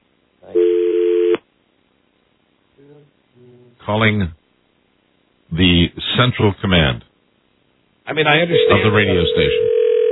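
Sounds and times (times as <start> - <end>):
steady electronic telephone tone: 0.5 - 1.4, 8.6 - 10.0
speech: 3.9 - 4.4, 5.5 - 7.1, 8.1 - 9.7.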